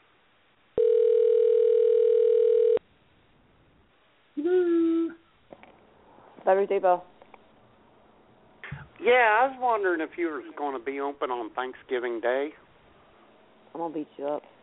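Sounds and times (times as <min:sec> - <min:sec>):
telephone dial tone while dialing a call: 0:00.8 - 0:02.8
speech: 0:06.5 - 0:07.1, 0:09.0 - 0:12.6, 0:13.7 - 0:14.5.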